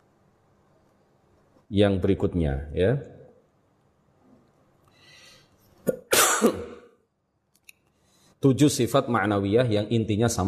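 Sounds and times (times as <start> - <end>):
speech: 1.7 - 3.2, 8.4 - 10.4
person coughing: 5.8 - 7.0.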